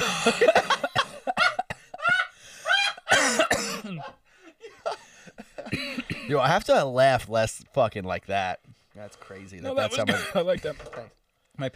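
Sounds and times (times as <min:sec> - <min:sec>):
person coughing in a harsh fit: 0:00.0 - 0:02.0, 0:03.1 - 0:04.2, 0:05.6 - 0:06.4, 0:09.9 - 0:10.6
speech: 0:00.2 - 0:00.6, 0:06.3 - 0:11.7.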